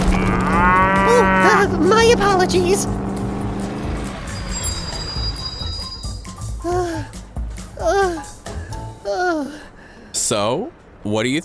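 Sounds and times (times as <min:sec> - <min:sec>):
excited voices crying out: 0:00.0 - 0:03.0
high whine: 0:00.0 - 0:06.3
manual-shift truck engine roaring at full throttle: 0:00.0 - 0:06.6
busy traffic noise: 0:00.0 - 0:11.4
speech: 0:02.1 - 0:03.1, 0:10.3 - 0:11.4.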